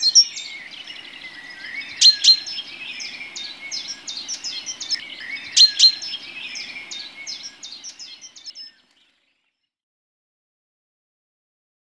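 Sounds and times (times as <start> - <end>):
tit calls: 0.0 - 8.7.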